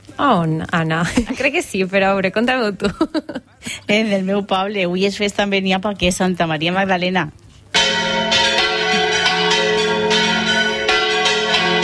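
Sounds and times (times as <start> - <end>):
speech: 0.2 - 7.4
church bell tower bells of Beniopa ringing on festival day: 7.8 - 11.8.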